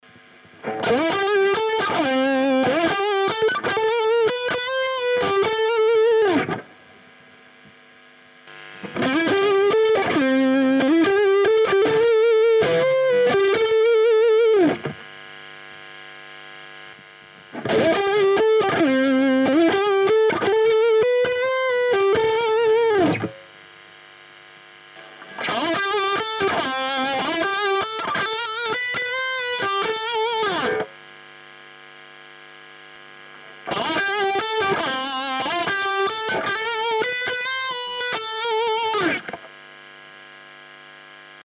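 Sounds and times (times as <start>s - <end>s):
raw lead guitar through a Marshall amplifier: 0.5s - 6.8s, 8.5s - 15.1s, 17.4s - 23.5s, 25.0s - 31.1s, 33.4s - 39.6s.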